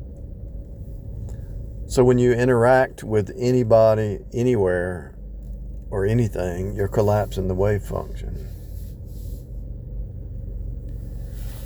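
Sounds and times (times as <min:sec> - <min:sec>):
truck engine towing a big welding trailer through a drive-thru: 0:00.0 - 0:11.6
speech: 0:01.9 - 0:05.2, 0:05.9 - 0:08.6.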